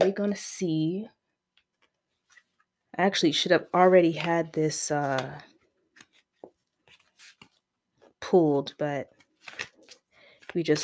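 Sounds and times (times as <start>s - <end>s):
speech: 0.0s - 1.2s, 3.0s - 5.5s, 8.2s - 9.7s, 10.5s - 10.8s
tarot cards being shuffled: 5.0s - 7.6s, 9.1s - 10.8s.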